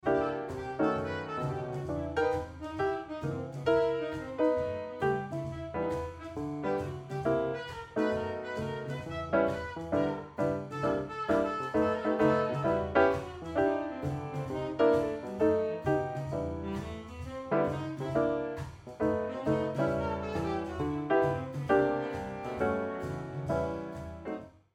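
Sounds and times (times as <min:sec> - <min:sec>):
solo piano: 0:00.0 - 0:24.5.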